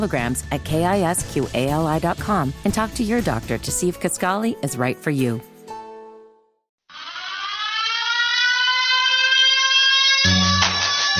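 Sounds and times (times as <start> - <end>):
speech: 0.0 - 5.5
harsh buzzing tone: 6.9 - 11.1
loud warning siren wailing: 6.9 - 11.1.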